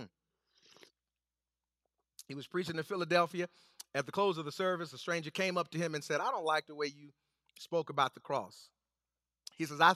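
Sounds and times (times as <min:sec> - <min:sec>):
person sipping hot coffee: 0:00.5 - 0:01.1
speech: 0:02.3 - 0:08.8, 0:09.6 - 0:09.9.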